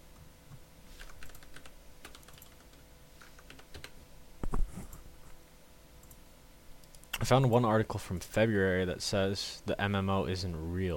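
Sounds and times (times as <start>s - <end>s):
typing on a computer keyboard: 1.0s - 4.0s
speech: 7.2s - 10.9s.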